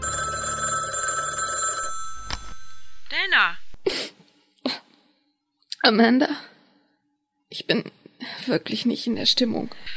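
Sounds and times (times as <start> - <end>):
telephone bell ringing: 0.0 - 2.8
speech: 3.4 - 4.1, 5.9 - 6.5, 7.5 - 9.9.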